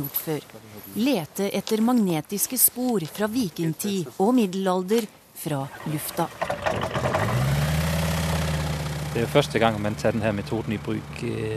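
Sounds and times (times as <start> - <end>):
speech: 0.0 - 7.5, 9.2 - 11.5
aircraft engine idling before takeoff at an airport: 5.7 - 11.5.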